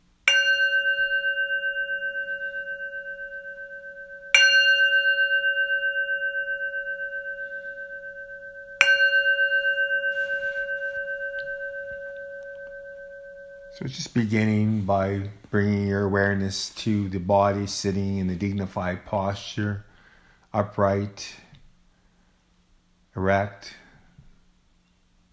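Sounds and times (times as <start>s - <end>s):
meditation gong struck and ringing: 0.2s - 15.3s
speech: 13.8s - 19.9s, 20.5s - 21.4s, 23.2s - 23.8s.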